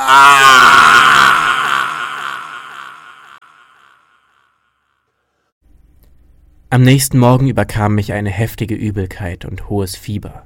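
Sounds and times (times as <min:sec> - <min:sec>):
man screaming in pain as a burning torch is held to his face: 0:00.0 - 0:03.9
speech: 0:06.7 - 0:10.4.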